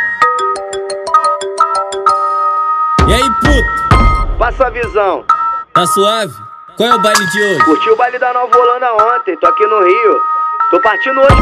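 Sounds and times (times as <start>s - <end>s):
phone ringtone melody as an outgoing call is placed: 0.0s - 11.4s
speech: 4.5s - 11.4s.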